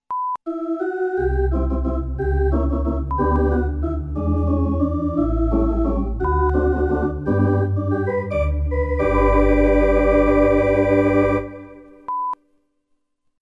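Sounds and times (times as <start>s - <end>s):
baseball music: 0.5s - 12.1s.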